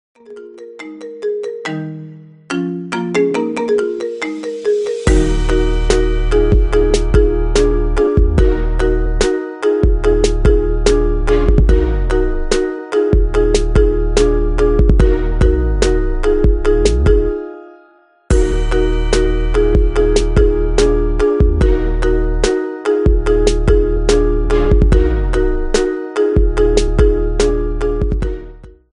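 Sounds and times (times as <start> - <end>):
marimba ringtone remix: 0.2 - 28.8.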